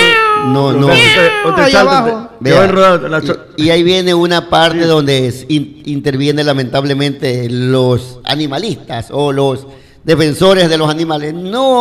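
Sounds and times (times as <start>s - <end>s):
person imitating cat meowing: 0.0s - 2.2s
speech: 0.5s - 11.7s.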